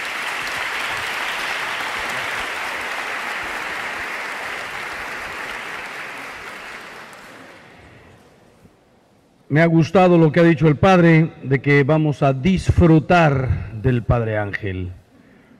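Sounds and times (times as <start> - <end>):
crowd applause at a faith conference held in a school: 0.0 - 8.0
speech: 9.5 - 15.0.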